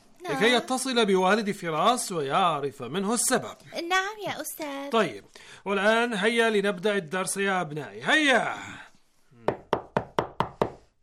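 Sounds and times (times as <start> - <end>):
speech: 0.3 - 8.8
knocking on a wooden door: 9.4 - 10.8.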